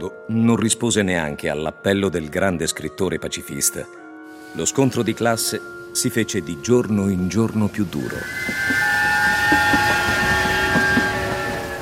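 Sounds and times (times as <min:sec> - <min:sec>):
speech: 0:00.0 - 0:08.8
train bound for Perm rumbling along: 0:07.4 - 0:11.8
train wheels clacking over the rails: 0:08.0 - 0:11.8.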